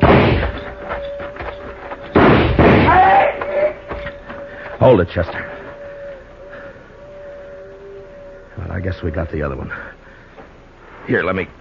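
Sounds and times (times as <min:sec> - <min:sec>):
gunshots in a drama shootout: 0:00.0 - 0:00.7, 0:02.1 - 0:03.1
faint steady hum: 0:00.0 - 0:11.6
speech: 0:04.8 - 0:05.5, 0:08.8 - 0:10.0, 0:11.1 - 0:11.6.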